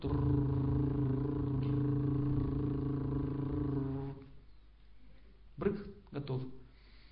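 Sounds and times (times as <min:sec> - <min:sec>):
speech: 0:00.0 - 0:00.6
person imitating a car engine with a low droning hum: 0:00.0 - 0:04.2.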